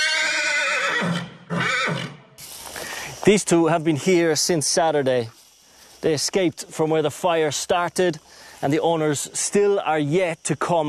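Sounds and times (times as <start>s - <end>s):
horse rescued from fires whinnying loudly: 0.0s - 2.2s
speech: 3.3s - 5.4s, 6.0s - 10.8s.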